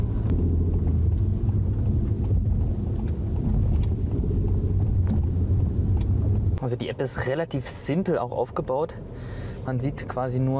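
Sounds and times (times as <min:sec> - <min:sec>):
car engine rumble from inside a car driving through city traffic: 0:00.0 - 0:10.5
road noise from inside a car in city traffic: 0:00.0 - 0:10.5
speech: 0:06.7 - 0:10.5.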